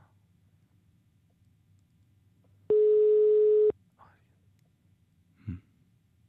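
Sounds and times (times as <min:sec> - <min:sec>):
faint noise on a telephone line: 0:00.0 - 0:06.2
steady telephone ringback tone: 0:02.7 - 0:03.7.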